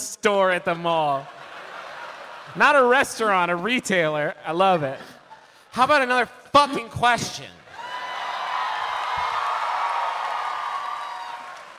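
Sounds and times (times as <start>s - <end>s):
speech: 0.2s - 1.4s, 2.5s - 5.2s, 5.8s - 7.6s
laughter: 1.1s - 3.7s, 4.6s - 5.6s
high whoops: 7.7s - 11.7s
live audience cheering and applauding: 7.7s - 11.7s.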